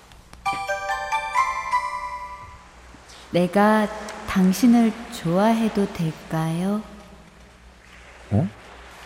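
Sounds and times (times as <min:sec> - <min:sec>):
phone text message alert chime: 0:00.5 - 0:02.6
speech: 0:03.3 - 0:06.9, 0:08.3 - 0:08.6.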